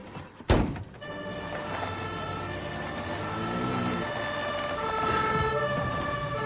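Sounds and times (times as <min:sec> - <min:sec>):
heavy door shutting thunk: 0:00.5 - 0:01.0
ambulance siren wailing: 0:01.0 - 0:06.4.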